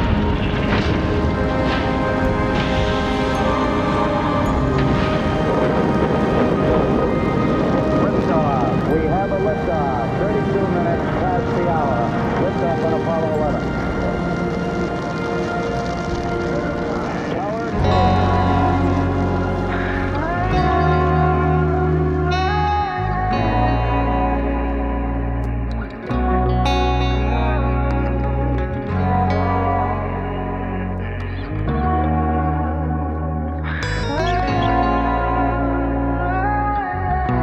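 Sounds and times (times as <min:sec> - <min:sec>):
rocket engine roar at liftoff: 0:00.0 - 0:22.7
faint voices: 0:00.0 - 0:37.4.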